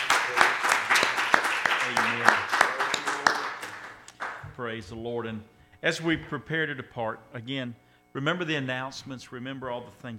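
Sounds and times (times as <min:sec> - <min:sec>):
church audience clapping hands in praise: 0:00.0 - 0:04.4
speech: 0:01.9 - 0:02.6, 0:04.6 - 0:10.1.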